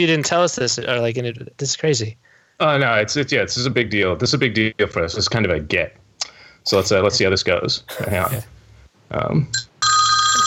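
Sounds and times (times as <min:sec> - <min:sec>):
speech: 0:00.0 - 0:06.0, 0:06.6 - 0:09.7
telephone ringing with a bright electronic tone: 0:09.6 - 0:10.4.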